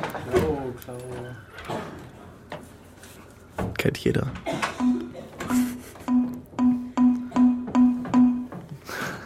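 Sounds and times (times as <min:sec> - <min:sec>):
speech: 0:00.3 - 0:01.8, 0:03.8 - 0:04.9
Windows error ding alert: 0:04.8 - 0:08.6.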